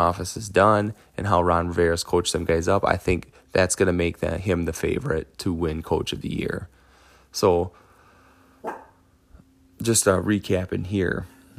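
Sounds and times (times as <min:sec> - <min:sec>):
speech: 0:00.0 - 0:07.8, 0:09.8 - 0:11.4
low steady hum: 0:00.0 - 0:11.5
dog barking: 0:08.6 - 0:09.0.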